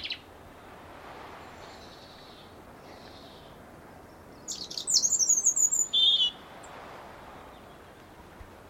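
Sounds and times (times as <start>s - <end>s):
European robin Erithacus rubecula song with high jingling notes and trill: 0.0s - 0.3s, 1.4s - 6.5s
soft hiss: 0.0s - 8.6s.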